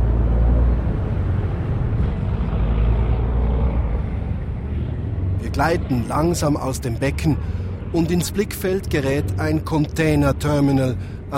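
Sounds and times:
ship engines droning in the harbor of Genoa Italy on a cold windy day: 0:00.0 - 0:11.3
speech: 0:05.6 - 0:11.3.

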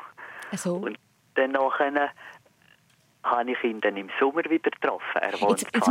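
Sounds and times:
speech: 0:00.6 - 0:02.4, 0:03.3 - 0:05.8
voice imitating a racing car revving and whining: 0:05.3 - 0:05.8.

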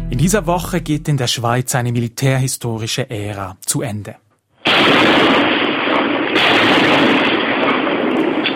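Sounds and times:
speech: 0:00.2 - 0:05.2
large fortress cannons firing from armoured bunkers in the Gotthard massif, Switzerland: 0:04.6 - 0:08.5.

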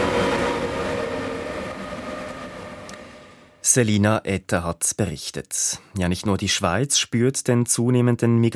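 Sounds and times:
train from Austria rumbling into a station: 0:00.0 - 0:03.8
speech: 0:03.7 - 0:08.5.

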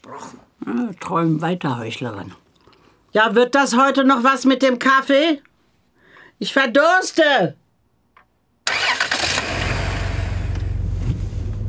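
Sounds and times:
speech: 0:00.1 - 0:02.4, 0:03.1 - 0:05.5, 0:06.4 - 0:07.6
car engine cranking and starting: 0:08.7 - 0:11.6.

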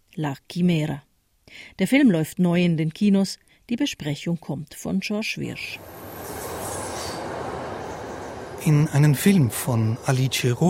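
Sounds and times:
speech: 0:00.2 - 0:06.0, 0:08.6 - 0:10.6
faint high squeal of train wheels: 0:05.8 - 0:09.8
train rolling on rails: 0:05.8 - 0:10.6.

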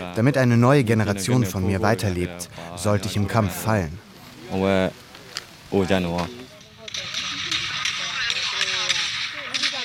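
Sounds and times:
speech: 0:00.2 - 0:05.0, 0:05.7 - 0:06.4
gunshot cracks recorded in a phone video: 0:06.6 - 0:09.8.

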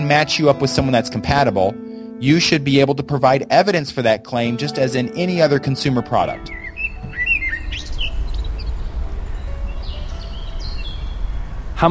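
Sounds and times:
speech: 0:00.1 - 0:06.6
birds chirping in a city park: 0:06.1 - 0:11.8
city traffic rumble: 0:06.4 - 0:11.8.

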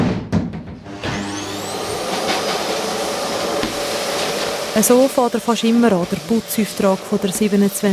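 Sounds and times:
vacuum cleaner switching on and running: 0:00.8 - 0:07.9
clunks and knocks from handling a vacuum cleaner: 0:03.6 - 0:03.9
speech: 0:04.8 - 0:07.9.

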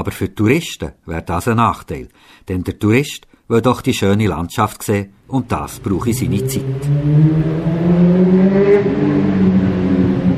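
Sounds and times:
speech: 0:00.0 - 0:09.7
motorcycle speeding on a mountain valley road in the Centovalli: 0:05.8 - 0:10.3.

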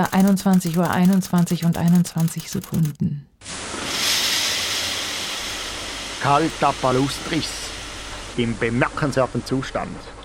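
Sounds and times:
speech: 0:00.0 - 0:03.7, 0:06.2 - 0:07.7, 0:08.4 - 0:10.2
steam hissing as water hits hot stones in a Finnish sauna in a villa: 0:03.4 - 0:09.9.

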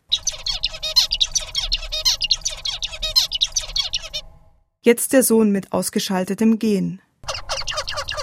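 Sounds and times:
adult male zebra finch song: 0:00.0 - 0:04.4, 0:07.2 - 0:08.2
speech: 0:04.8 - 0:07.1.

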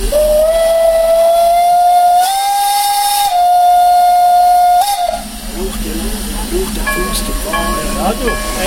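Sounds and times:
steam locomotive whistle blast: 0:00.0 - 0:05.3
hissing steam from a steam locomotive: 0:00.0 - 0:08.6
steam train rumbling and chuffing as it starts off: 0:00.0 - 0:08.6.

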